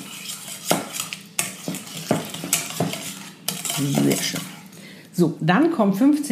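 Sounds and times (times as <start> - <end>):
large metal whisk mixing tomato quiche filling in a bowl: 0.0 - 4.8
speech: 3.8 - 4.6, 5.2 - 6.3.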